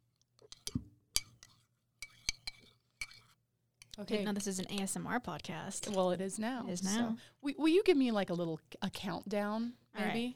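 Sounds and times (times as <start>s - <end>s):
spoon stirring and clinking against its container: 0.4s - 5.0s
speech: 4.0s - 10.3s.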